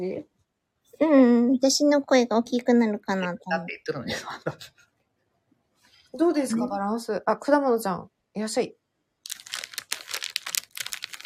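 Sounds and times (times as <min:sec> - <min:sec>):
speech: 0:00.0 - 0:00.3, 0:01.0 - 0:04.8, 0:06.1 - 0:08.8
rustling crinkling noise: 0:09.2 - 0:11.2.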